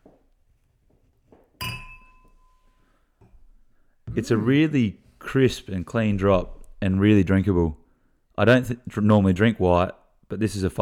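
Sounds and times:
wine glass clinking as a glass is fetched for white wine: 1.6s - 2.9s
speech: 4.2s - 7.8s, 8.4s - 10.8s.

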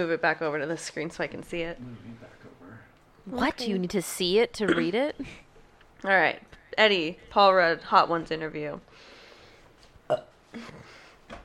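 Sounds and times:
speech: 0.0s - 2.4s, 3.2s - 5.4s, 6.0s - 9.1s, 10.1s - 10.9s
person burping: 4.6s - 5.0s, 10.1s - 10.8s.

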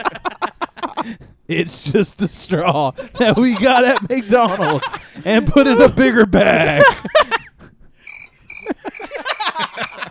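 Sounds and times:
laughter: 0.0s - 1.2s, 2.5s - 8.0s, 8.6s - 10.0s
speech: 1.0s - 7.1s
chorus of croaking frog-like calls: 8.0s - 8.8s
crickets chirping with a steady high trill: 8.0s - 9.2s.

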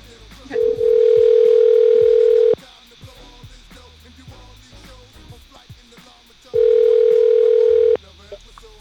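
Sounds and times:
telephone line tone: 0.6s - 2.6s, 6.6s - 8.0s.

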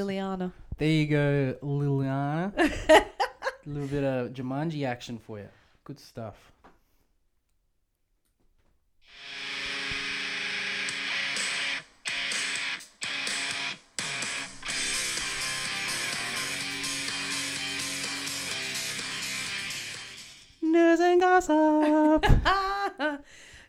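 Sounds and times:
speech: 0.0s - 6.5s, 20.7s - 23.4s
industrial metal track with heavily distorted guitars: 9.2s - 20.6s.

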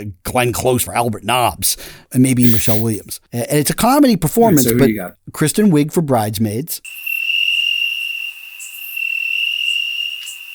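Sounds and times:
speech: 0.0s - 7.0s
high-pitched cricket trill: 6.9s - 10.5s.

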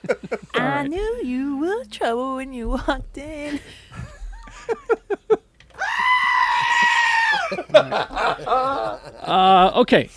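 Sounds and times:
speech: 0.7s - 3.8s, 7.8s - 10.1s
laughter: 3.9s - 5.4s, 6.6s - 9.7s
goat letting out a human-like scream: 5.8s - 7.6s.

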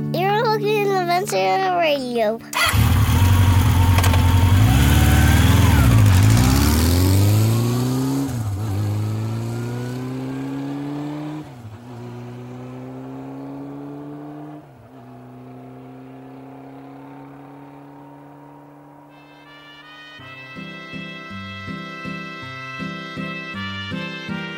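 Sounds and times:
voices: 0.1s - 2.7s
motorcycle engine revving: 2.5s - 19.6s.

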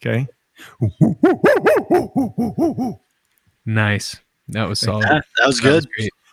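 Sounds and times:
speech: 0.0s - 3.0s, 3.6s - 6.2s
person imitating a monkey call: 0.8s - 3.0s.

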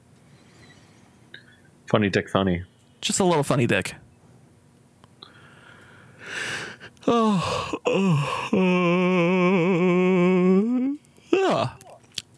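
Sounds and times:
speech: 1.9s - 4.0s, 7.1s - 10.1s
big drawn-out yawn: 6.3s - 12.0s.

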